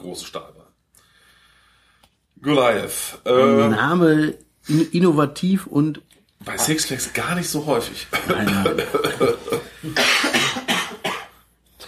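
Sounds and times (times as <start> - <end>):
speech: 0.0 - 0.6, 2.4 - 10.2
several people coughing: 8.1 - 11.8.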